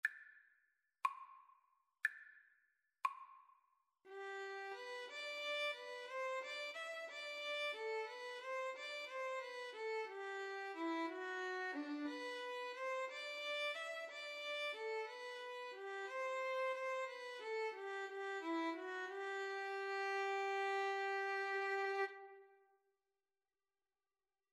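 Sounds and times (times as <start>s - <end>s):
string trio playing: 4.1s - 22.2s.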